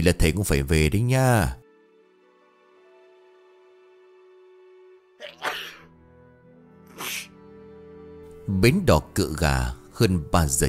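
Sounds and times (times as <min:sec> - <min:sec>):
speech: 0:00.0 - 0:01.6, 0:08.5 - 0:10.6
ill man sneezing: 0:05.2 - 0:05.9, 0:06.9 - 0:07.4.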